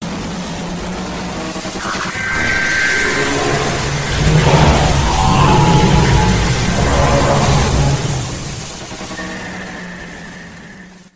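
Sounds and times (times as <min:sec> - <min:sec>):
warning siren: 0:01.8 - 0:10.8.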